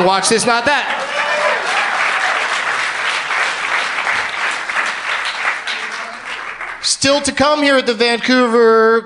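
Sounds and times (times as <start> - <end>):
speech: 0.0 - 1.0, 6.8 - 9.0
large audience applause at a comedy festival: 0.6 - 7.0.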